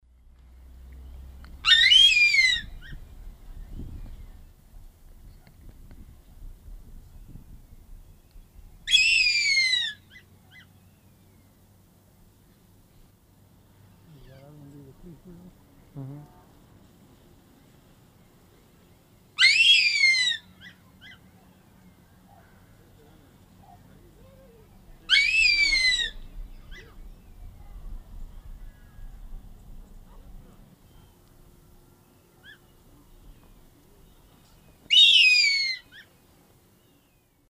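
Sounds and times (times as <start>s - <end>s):
Harpia harpyja pair calling in South American Eastern Lowlands: 1.6s - 3.0s, 8.9s - 10.7s, 19.4s - 21.2s, 23.6s - 27.0s, 32.4s - 32.7s, 34.9s - 36.1s.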